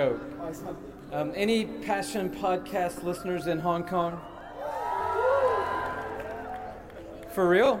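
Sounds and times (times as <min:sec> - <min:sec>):
speech: 0:00.0 - 0:04.3, 0:07.4 - 0:07.7
live audience cheering and whooping: 0:04.1 - 0:06.8.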